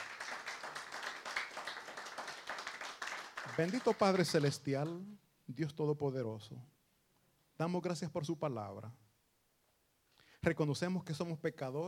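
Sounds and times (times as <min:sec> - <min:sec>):
audience applauding: 0:00.0 - 0:05.0
speech: 0:03.5 - 0:06.7, 0:07.6 - 0:09.0, 0:10.4 - 0:11.8.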